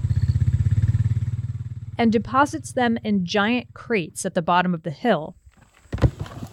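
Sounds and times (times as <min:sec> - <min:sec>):
ATV engine running loaded with full buckets at a winery: 0:00.0 - 0:04.6
speech: 0:02.0 - 0:05.4.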